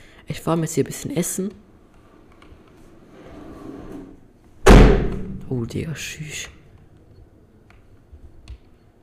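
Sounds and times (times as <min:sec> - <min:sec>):
low rumbling noise: 0:00.0 - 0:09.0
speech: 0:00.3 - 0:01.7, 0:05.5 - 0:06.6
door slamming shut: 0:04.6 - 0:05.5.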